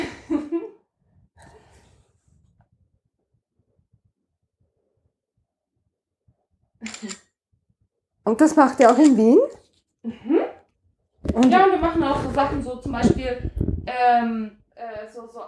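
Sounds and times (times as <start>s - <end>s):
camera shutter clicking as a photo is taken: 6.8s - 7.2s
speech: 8.3s - 10.4s, 11.4s - 15.4s.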